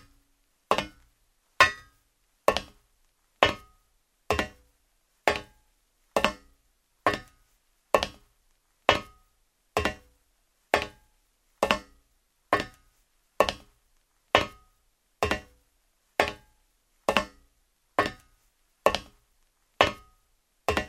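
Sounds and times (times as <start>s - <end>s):
footsteps in shoes on a metal floor: 0.7s - 1.1s, 1.6s - 2.8s, 5.3s - 5.6s, 6.2s - 8.3s, 8.9s - 10.1s, 10.8s - 11.0s, 11.6s - 12.0s, 12.6s - 13.8s, 15.2s - 20.8s.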